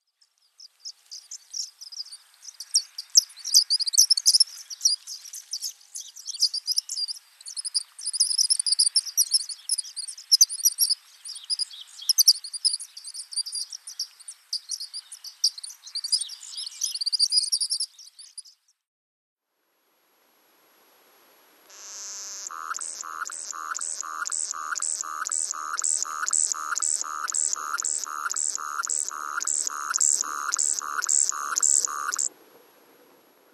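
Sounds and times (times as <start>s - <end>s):
white-rumped sandpiper calling: 21.7s - 32.3s.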